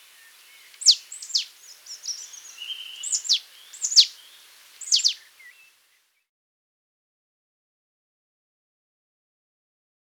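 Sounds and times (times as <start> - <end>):
marsh tit sharp high downslurred calls: 0.0 - 5.8.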